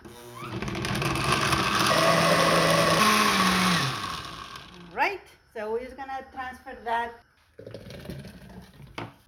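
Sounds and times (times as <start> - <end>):
blender motor whirring as contents churn: 0.0 - 4.9
speech: 6.2 - 7.7.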